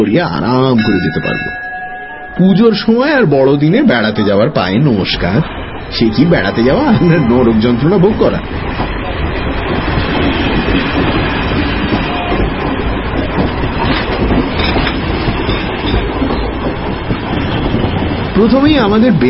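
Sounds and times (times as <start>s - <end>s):
speech: 0.0s - 1.6s, 2.4s - 9.0s, 18.4s - 19.2s
passenger train running on rails at night, heard from inside a compartment: 0.0s - 19.2s
passenger train wheels rattling and clattering on rails: 8.0s - 19.2s.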